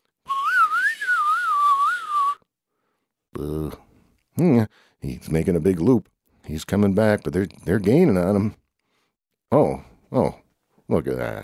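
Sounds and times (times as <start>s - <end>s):
person whistling to call back a rat: 0.2s - 2.5s
speech: 4.4s - 8.6s, 9.5s - 11.4s.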